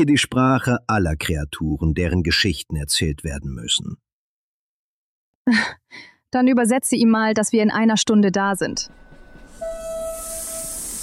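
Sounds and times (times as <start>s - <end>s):
speech: 0.0s - 4.1s, 5.5s - 9.0s
steady whistling tone in a second-class train carriage: 9.1s - 11.0s.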